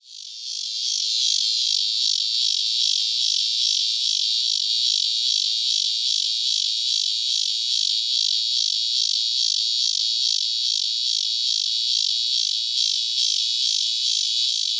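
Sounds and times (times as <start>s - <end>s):
Megatibicen pronotalis walkeri cicadas in Florida US: 0.0s - 14.7s.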